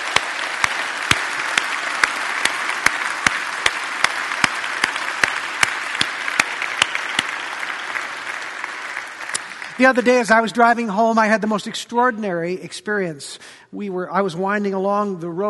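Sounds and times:
church audience applauding during a service: 0:00.0 - 0:10.5
speech: 0:09.8 - 0:15.4.

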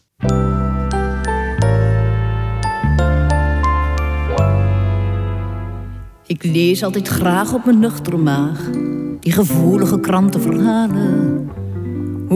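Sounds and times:
loud ringing chords of a recorded song's instrumental intro: 0:00.2 - 0:06.0
speech: 0:06.3 - 0:11.6.

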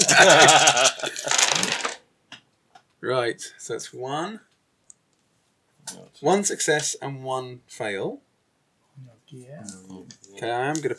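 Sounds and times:
laughter: 0:00.0 - 0:01.7
speech: 0:00.0 - 0:01.7, 0:03.0 - 0:04.5, 0:05.9 - 0:08.3, 0:09.0 - 0:10.9
handful of white, red and black dice clattering onto a table: 0:01.2 - 0:02.0.

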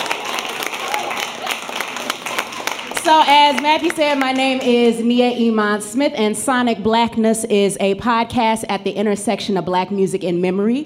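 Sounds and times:
live audience applause at an evening event: 0:00.0 - 0:04.7
speech: 0:03.1 - 0:10.8.

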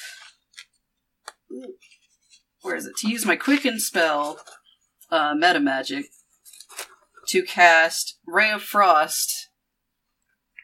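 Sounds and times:
paper pages flipping: 0:00.0 - 0:04.8, 0:06.0 - 0:07.4
speech: 0:02.6 - 0:06.2, 0:07.3 - 0:09.4.

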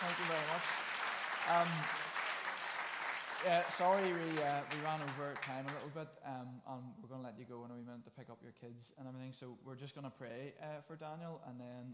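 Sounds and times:
audience applause: 0:00.0 - 0:05.8
speech: 0:00.2 - 0:02.2, 0:03.4 - 0:11.9.

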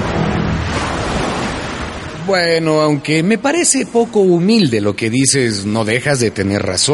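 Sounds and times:
ocean waves breaking and washing onto the shore: 0:00.0 - 0:04.4
speech: 0:02.3 - 0:06.9.

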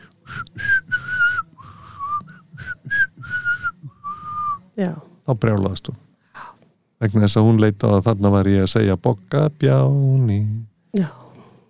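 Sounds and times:
person whistling a melody: 0:00.2 - 0:04.6
speech: 0:04.8 - 0:06.1, 0:07.0 - 0:11.2.

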